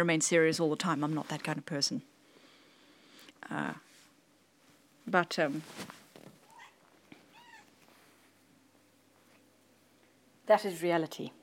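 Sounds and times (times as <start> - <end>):
speech: 0.0 - 2.1, 3.4 - 3.9, 5.1 - 6.0, 10.5 - 11.4
cat meowing: 6.4 - 7.7.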